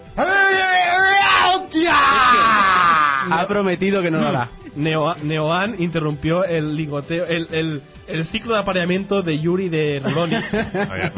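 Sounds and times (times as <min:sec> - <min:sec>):
person imitating a loud drawn-out scream: 0:00.2 - 0:03.4
speech: 0:03.3 - 0:11.1
laughter: 0:10.0 - 0:11.1.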